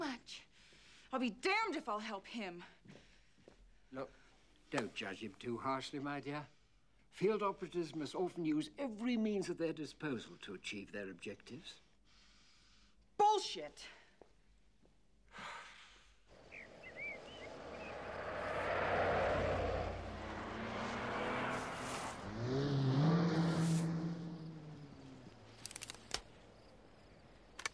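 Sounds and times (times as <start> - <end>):
speech: 1.1 - 3.0, 3.9 - 11.8, 13.3 - 14.0
cars and a jeep starting up and driving off: 16.3 - 27.6
sharp clicks: 25.4 - 26.5, 27.3 - 27.7.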